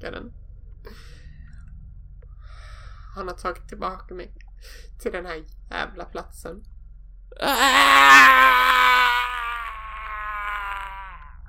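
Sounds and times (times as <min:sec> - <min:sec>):
speech: 0:00.0 - 0:01.0, 0:03.2 - 0:06.7, 0:07.4 - 0:08.8
faint low hum: 0:00.0 - 0:11.4
anguished tormented wailing cry from a basement: 0:07.4 - 0:11.3.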